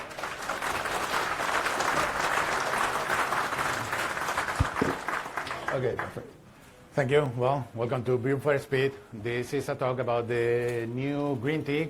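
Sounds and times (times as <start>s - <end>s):
audience applause at a software developer conference talk: 0.0s - 6.2s
speech: 5.8s - 6.4s, 7.0s - 11.8s.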